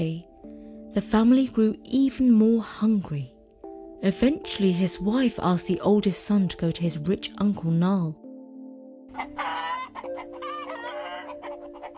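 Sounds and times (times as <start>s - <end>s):
speech: 1.0s - 3.3s, 4.0s - 8.2s, 9.2s - 10.1s
hens clucking: 9.1s - 11.9s.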